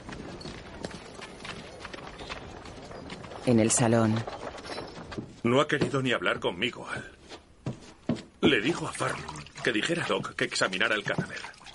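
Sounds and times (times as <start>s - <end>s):
horse hooves clip-clopping as it is led by the reins carrying a corpse: 0.0s - 7.1s
faint noisy background: 0.0s - 11.7s
speech: 3.4s - 4.4s, 5.4s - 7.2s, 8.4s - 11.5s.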